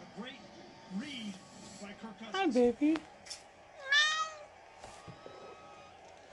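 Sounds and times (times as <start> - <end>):
speech: 2.0 - 3.4
cat meowing: 3.8 - 4.5.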